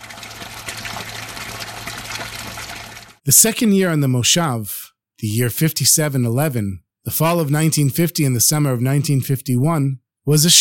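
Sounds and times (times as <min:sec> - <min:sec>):
drinking water gushing into a large tank in the desert: 0:00.0 - 0:03.2
speech: 0:03.2 - 0:10.6.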